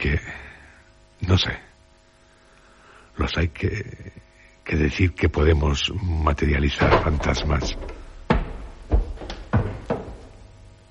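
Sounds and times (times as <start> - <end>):
speech: 1.2 - 1.7, 3.2 - 8.0
studio door opening with sharp wooden thumps and knocks: 6.8 - 10.4.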